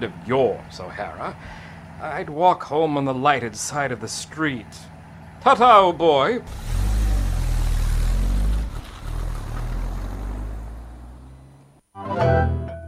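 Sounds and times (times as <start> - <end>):
speech: 0.0 - 6.8
car engine revving: 6.4 - 11.9.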